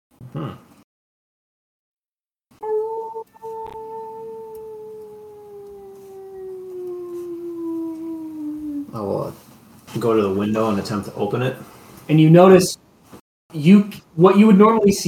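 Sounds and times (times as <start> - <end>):
speech: 0.4 - 0.6, 10.0 - 12.8, 13.5 - 15.0
long sustained howl: 2.6 - 9.0.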